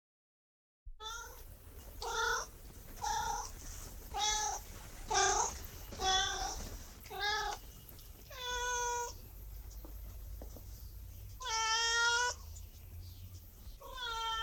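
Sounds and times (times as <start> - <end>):
cat meowing: 1.0 - 1.4, 2.0 - 3.5, 4.1 - 7.6, 8.3 - 9.2, 11.4 - 12.4, 13.8 - 14.4.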